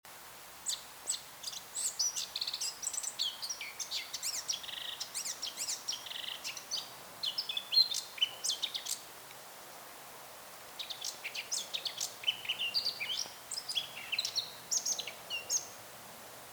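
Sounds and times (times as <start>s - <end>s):
Eurasian blackcap (Sylvia atricapilla) singing: 0.6s - 9.1s, 10.8s - 15.8s.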